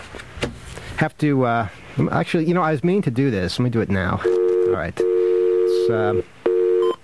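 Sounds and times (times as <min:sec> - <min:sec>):
speech: 0:01.0 - 0:05.1, 0:05.9 - 0:06.4
voice sounds: 0:03.9 - 0:06.3
telephone dial tone: 0:04.2 - 0:07.0.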